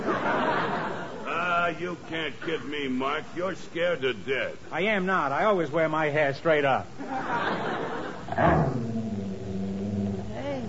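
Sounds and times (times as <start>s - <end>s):
laughter: 0.0s - 2.7s, 7.0s - 8.5s
speech: 1.8s - 7.8s
low sustained dog growl rising into a snarl: 8.3s - 10.6s.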